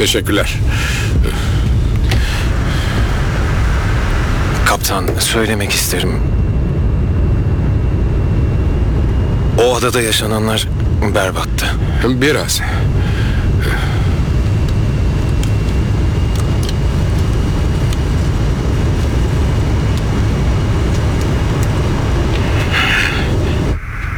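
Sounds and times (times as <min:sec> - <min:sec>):
speech: 0:00.0 - 0:01.5, 0:04.7 - 0:06.4, 0:09.6 - 0:12.8
airplane engine roar inside a cabin in flight: 0:00.0 - 0:24.1.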